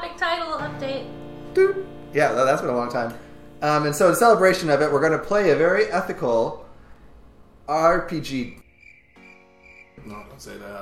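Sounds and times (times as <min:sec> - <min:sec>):
speech: 0:00.3 - 0:06.6, 0:07.7 - 0:08.6, 0:10.0 - 0:10.7
cricket chirping sound effect: 0:08.6 - 0:10.7.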